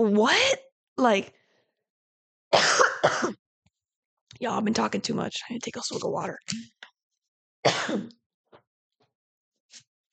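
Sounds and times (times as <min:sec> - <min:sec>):
speech: 0:00.0 - 0:01.4, 0:02.5 - 0:03.4, 0:04.4 - 0:06.8, 0:07.6 - 0:08.2
person coughing: 0:02.6 - 0:03.4, 0:07.7 - 0:08.1.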